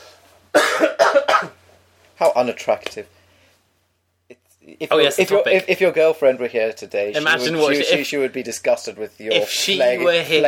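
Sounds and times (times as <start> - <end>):
loud harsh coughs: 0.5 - 1.6
speech: 2.2 - 3.2, 4.7 - 10.4.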